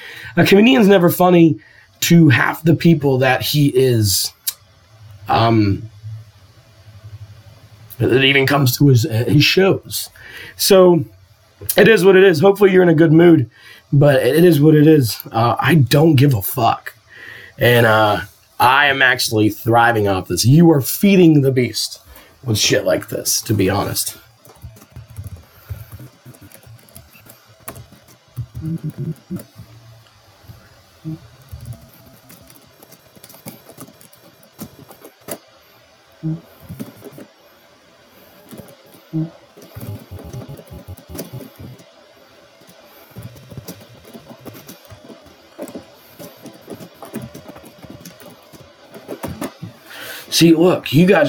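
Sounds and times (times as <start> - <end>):
speech: 0.4 - 4.4, 5.3 - 6.0, 8.0 - 17.0, 17.6 - 24.2, 28.6 - 29.5, 50.4 - 51.2
typing on a keyboard: 23.6 - 29.8, 31.0 - 35.5, 36.6 - 37.3, 38.4 - 49.7.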